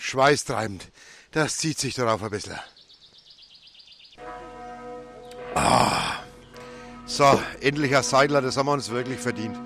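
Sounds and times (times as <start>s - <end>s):
speech: 0.1s - 2.8s, 5.5s - 6.1s, 7.1s - 9.6s
faint bird chirps: 2.4s - 4.2s
pilgrimage basilica church bell ringing: 4.2s - 9.6s.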